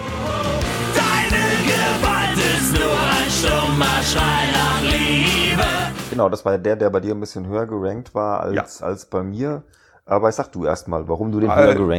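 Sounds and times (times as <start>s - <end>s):
distorted punk rock guitars: 0.0s - 6.2s
pounding punk rock drums on a steady driving beat: 0.6s - 6.2s
shouted punk rock vocals: 0.8s - 6.0s
speech: 6.1s - 11.9s.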